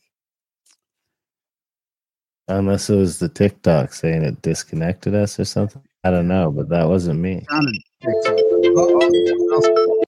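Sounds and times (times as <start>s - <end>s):
speech: 2.5s - 10.0s
phone ringtone: 7.5s - 10.0s.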